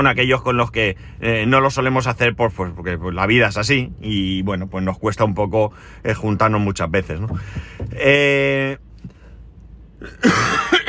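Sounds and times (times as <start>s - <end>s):
speech: 0.0s - 8.8s, 10.0s - 10.8s
harsh coughing: 10.0s - 10.8s.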